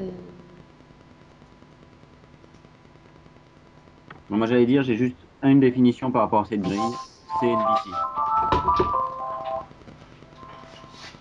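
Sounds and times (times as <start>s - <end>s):
speech: 4.3s - 9.0s
phone notification melody for a Facebook message: 6.6s - 9.7s.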